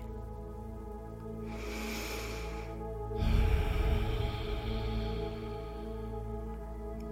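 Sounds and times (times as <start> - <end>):
rushing breath drawn through the throat: 1.4 - 6.4.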